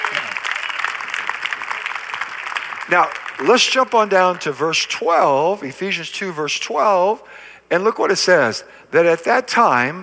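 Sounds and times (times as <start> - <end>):
church congregation clapping hands during a worship service: 0.0 - 5.6
speech: 2.9 - 10.0.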